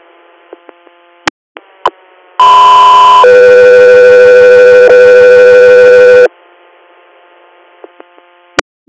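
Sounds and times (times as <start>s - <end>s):
two-part radio dispatch alert tones for an air inter-hospital response: 2.4s - 6.3s.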